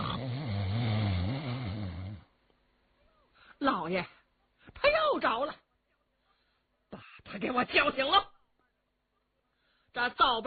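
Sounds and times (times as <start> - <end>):
voice imitating loud snoring: 0.0 - 2.3
speech: 3.6 - 5.6, 6.9 - 8.3, 10.0 - 10.4.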